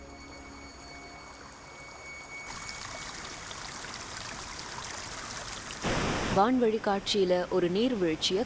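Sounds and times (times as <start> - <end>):
clear stream of water rushing and trickling: 0.0 - 7.7
speech: 6.4 - 8.4.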